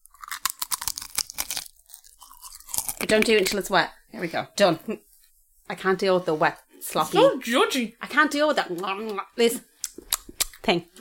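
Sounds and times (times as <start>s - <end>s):
crunchy food being chewed for ASMR: 0.0s - 3.6s, 9.8s - 10.7s
speech: 3.0s - 5.1s, 5.7s - 9.7s, 10.6s - 11.0s.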